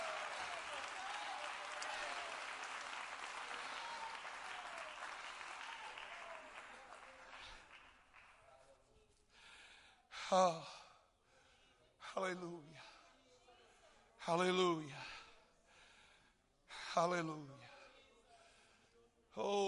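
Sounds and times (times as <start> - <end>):
large crowd clapping in praise: 0.0 - 8.7
speech: 10.3 - 10.8, 12.2 - 12.9, 14.3 - 15.2, 17.0 - 17.7, 19.4 - 19.6.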